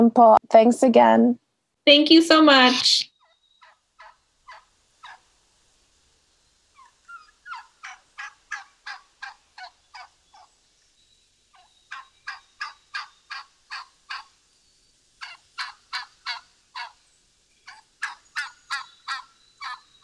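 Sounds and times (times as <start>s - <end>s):
speech: 0.0s - 3.1s
wild turkeys gobbling: 3.1s - 10.6s, 11.5s - 14.4s, 15.2s - 17.0s, 17.6s - 20.0s.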